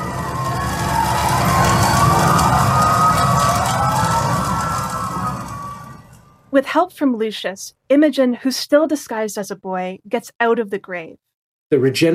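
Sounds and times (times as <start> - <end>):
emergency sirens wailing during a bushfire: 0.0 - 6.5
speech: 6.6 - 12.1.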